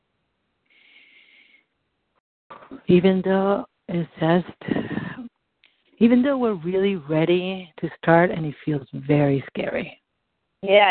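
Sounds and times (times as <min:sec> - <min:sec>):
person breathing deeply before a tapping exercise: 0:00.7 - 0:01.7
speech: 0:02.9 - 0:04.8, 0:06.0 - 0:10.0, 0:10.6 - 0:10.9.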